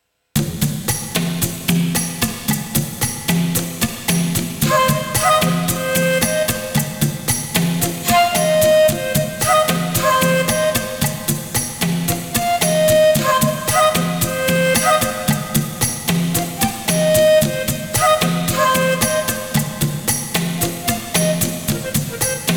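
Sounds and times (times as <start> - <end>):
welcome drum playing: 0.4 - 22.5.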